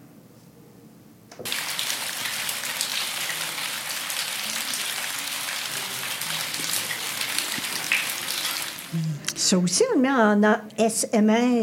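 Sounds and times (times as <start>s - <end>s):
speech: 1.4s - 1.7s, 8.9s - 11.6s
steady rain pattering on a hard surface: 1.4s - 9.2s.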